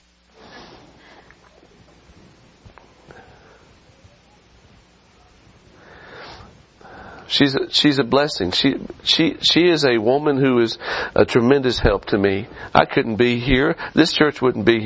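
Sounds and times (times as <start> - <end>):
faint rustling: 0.2 - 7.3
person blowing nose: 0.4 - 1.3, 5.9 - 6.6
speech: 7.3 - 14.8.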